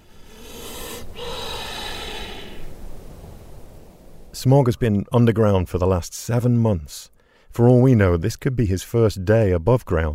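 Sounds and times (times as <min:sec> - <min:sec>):
snake breathing deeply as its body inflates: 0:00.0 - 0:04.0
speech: 0:04.4 - 0:10.1.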